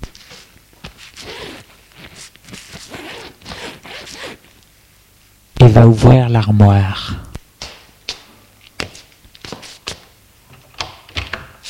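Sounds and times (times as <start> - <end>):
fabric rustling: 0.2 - 4.5
bag on a bed being unzipped: 1.2 - 4.4
speech: 5.7 - 7.1.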